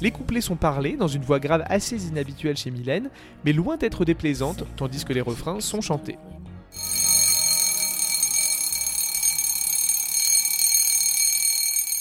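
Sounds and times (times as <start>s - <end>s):
speech: 0.0s - 6.9s
strident alarm clock metallic bell ringing: 6.8s - 11.9s.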